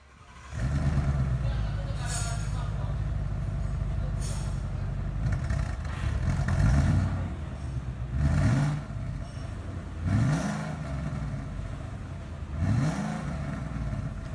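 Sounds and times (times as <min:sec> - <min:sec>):
deep rough multi-cylinder Ford engine idling and revving: 0:00.0 - 0:14.3
speech-like sounds: 0:01.4 - 0:05.2.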